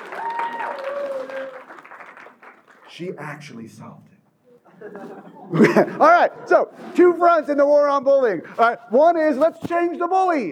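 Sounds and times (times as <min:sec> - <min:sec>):
audience applause for a participant at a talk: 0:00.0 - 0:02.9
speech: 0:03.0 - 0:04.1, 0:04.8 - 0:10.5
laughter: 0:04.6 - 0:07.0.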